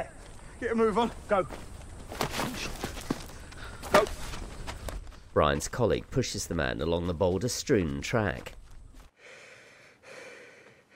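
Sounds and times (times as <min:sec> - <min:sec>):
speech: 0:00.0 - 0:02.6, 0:05.4 - 0:08.6
man shivering and panting in bed at home: 0:09.1 - 0:10.9
man waking in bed gasping: 0:09.2 - 0:10.9.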